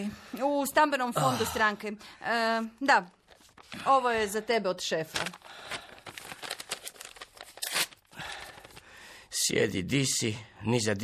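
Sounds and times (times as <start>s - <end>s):
speech: 0.0s - 5.8s, 9.4s - 11.0s
paper being unfolded and crinkled: 3.0s - 4.2s, 4.9s - 9.0s.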